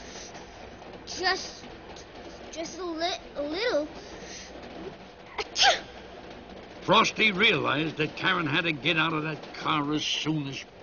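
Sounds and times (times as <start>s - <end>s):
speech: 1.2s - 1.7s, 2.6s - 4.2s, 5.6s - 5.9s, 6.9s - 10.7s
sneeze from a person who is cold: 5.6s - 5.9s.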